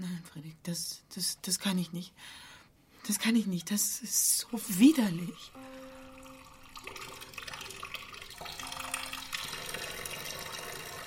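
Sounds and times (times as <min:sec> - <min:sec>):
speech: 0:00.4 - 0:05.7
water pouring into a half-full basin: 0:04.4 - 0:11.0.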